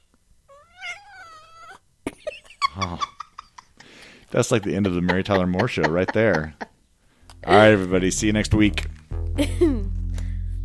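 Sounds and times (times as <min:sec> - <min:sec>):
cat meowing: 0:00.5 - 0:01.8
laughter: 0:02.5 - 0:06.8
speech: 0:02.8 - 0:03.1, 0:04.3 - 0:06.6, 0:07.4 - 0:09.8.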